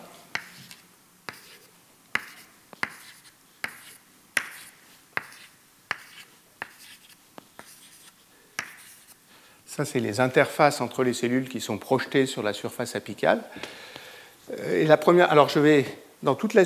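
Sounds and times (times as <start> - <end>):
drawing a graph of cells by hand: 0.3 - 9.2
speech: 9.8 - 13.8, 14.7 - 16.6.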